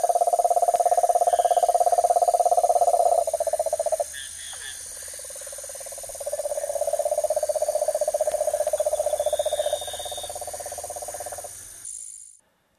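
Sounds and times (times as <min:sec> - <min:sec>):
cane toad trilling in the Ecuadorian Amazon: 0:00.0 - 0:12.1
faint insect hiss in the Ecuadorian Amazon: 0:00.0 - 0:12.7.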